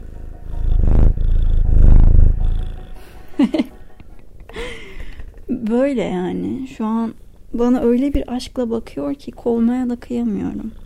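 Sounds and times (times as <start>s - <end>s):
cat purring: 0.0s - 3.7s, 10.0s - 10.8s
laughter: 3.3s - 4.7s
speech: 5.7s - 10.8s.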